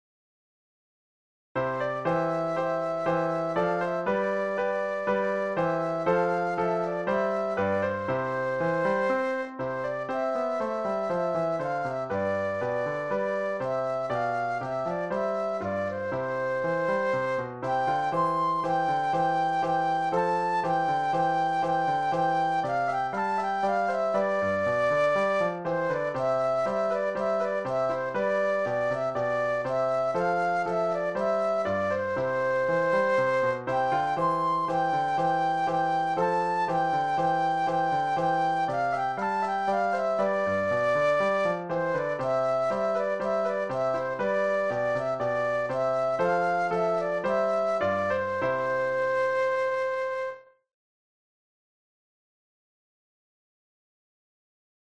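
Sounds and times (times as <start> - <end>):
classical solo flute playing a march: 1.6 - 50.6.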